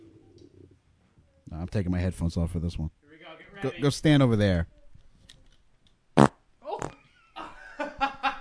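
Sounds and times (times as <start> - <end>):
speech: 1.6 - 3.0, 3.6 - 4.8
fart into a microphone: 6.2 - 7.1
people laughing: 7.4 - 8.3.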